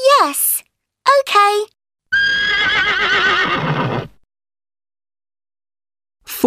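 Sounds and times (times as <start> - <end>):
speech: 0.2 - 0.5, 1.3 - 1.8
horse neighing: 2.1 - 4.2.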